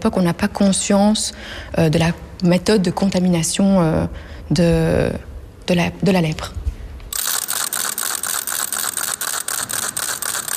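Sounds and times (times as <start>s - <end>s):
speech: 0.0s - 6.6s
small wooden crank-turned ratchet rattle clicking, leper's warning noisemaker: 7.2s - 10.5s.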